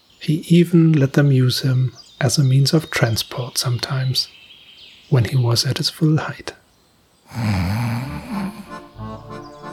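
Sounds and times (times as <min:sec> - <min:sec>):
speech: 0:00.2 - 0:04.4, 0:05.1 - 0:06.6, 0:07.3 - 0:08.4
person snoring: 0:07.3 - 0:08.9.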